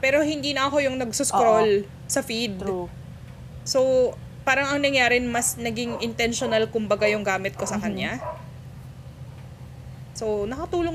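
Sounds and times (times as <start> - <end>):
speech: 0.0 - 3.0, 3.7 - 8.4, 10.2 - 10.9
steady low hum: 0.0 - 10.9
neighbor's dog barking: 5.7 - 6.9, 7.5 - 8.6.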